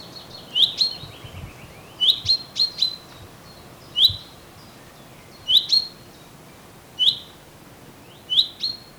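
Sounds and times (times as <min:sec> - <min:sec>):
light outdoor background noise: 0:00.0 - 0:08.9
common chaffinch Fringilla coelebs giving crisp high chip calls: 0:00.1 - 0:04.4, 0:05.4 - 0:06.0, 0:07.0 - 0:07.4, 0:08.1 - 0:08.9.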